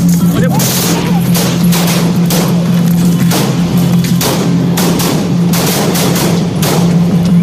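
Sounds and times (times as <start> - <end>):
people shouting: 0.2 - 1.7
rapid gunfire during an attack: 0.5 - 7.3.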